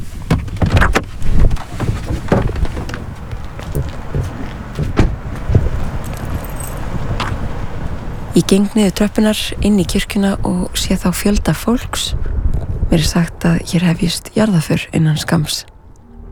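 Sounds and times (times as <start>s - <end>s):
rustling movement of a person climbing out of a car: 0.0s - 8.4s
car door knocks and clunks outside a church: 0.2s - 8.0s
keys jingling: 3.5s - 7.6s
speech: 8.4s - 15.7s
steady low rumble: 15.8s - 16.2s.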